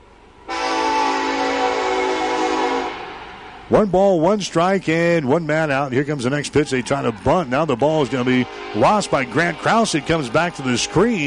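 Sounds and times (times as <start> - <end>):
train horn sound effect played at a college baseball game: 0.5 - 3.3, 8.0 - 11.2
speech: 3.7 - 11.2.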